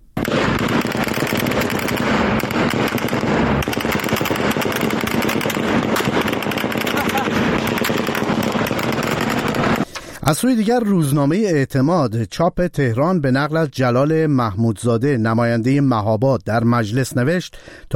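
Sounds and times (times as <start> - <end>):
automatic gunfire aimed at protesters: 0.2 - 9.9
speech: 10.3 - 17.9.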